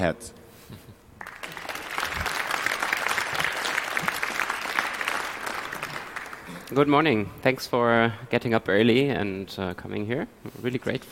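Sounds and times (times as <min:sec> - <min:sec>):
speech: 0:00.0 - 0:00.8, 0:06.7 - 0:11.1
roomful of people applauding: 0:01.2 - 0:06.9.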